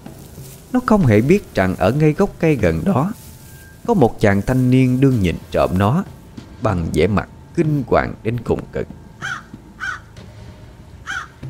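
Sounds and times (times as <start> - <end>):
quiet noise: 0.0 - 11.4
speech: 0.7 - 3.2, 3.9 - 9.4
black crow cawing: 9.2 - 10.3, 11.0 - 11.4.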